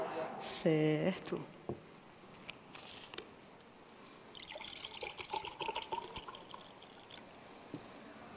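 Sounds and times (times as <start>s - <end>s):
speech: 0.4s - 1.8s
water pouring into a glass: 4.3s - 7.3s.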